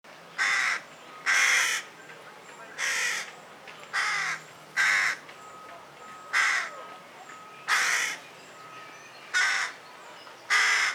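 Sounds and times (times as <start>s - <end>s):
carrion crow giving harsh raspy caws: 0.4s - 1.9s, 2.8s - 3.3s, 4.0s - 5.2s, 6.3s - 6.8s, 7.7s - 8.2s, 9.3s - 9.8s, 10.5s - 10.9s.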